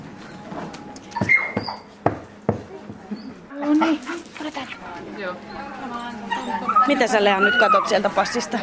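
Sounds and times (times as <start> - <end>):
newly arrived four-year-old dog yapping: 1.1 - 1.9, 6.3 - 8.6
newly arrived four-year-old dog whimpering with high whines: 5.4 - 8.6
speech: 6.9 - 8.6.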